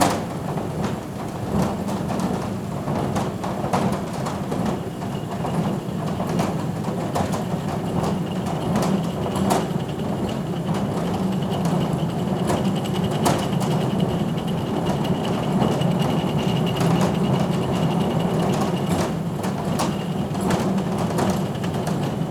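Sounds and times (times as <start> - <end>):
conveyor ambience: 0.2 - 22.2.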